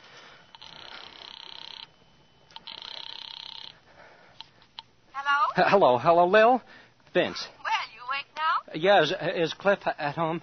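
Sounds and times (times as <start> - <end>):
faint hiss: 0.0 - 10.4
telephone ringing as a call is placed from a drugstore phone booth: 0.3 - 5.6
speech: 5.6 - 7.6, 8.7 - 10.4.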